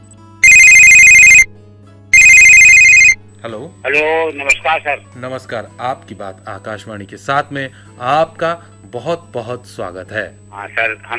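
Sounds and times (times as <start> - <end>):
telephone ringing with a steady electronic trill: 0.4 - 1.5, 2.2 - 3.2
speech: 3.4 - 11.1.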